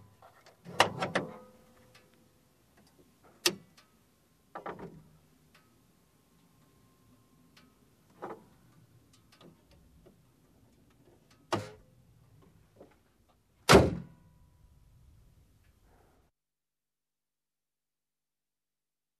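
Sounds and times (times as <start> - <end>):
car hood opening and closing: 0.7 - 1.5, 11.5 - 11.8, 13.7 - 14.1.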